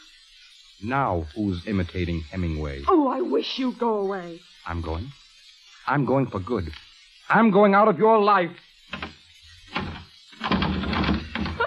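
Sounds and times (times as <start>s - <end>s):
speech: 0.8s - 5.2s, 5.8s - 9.2s
bolted door shoved and rattled by its doorknob: 8.9s - 11.6s.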